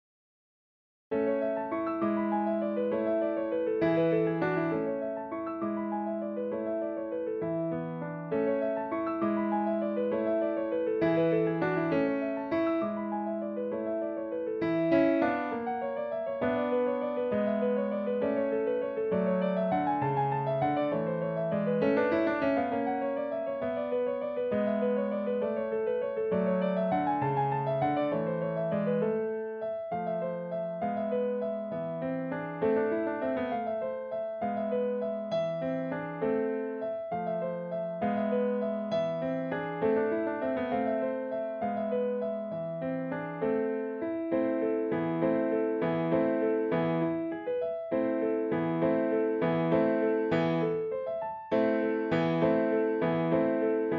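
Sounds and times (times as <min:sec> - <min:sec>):
allemande piano piece: 0:01.1 - 0:53.9.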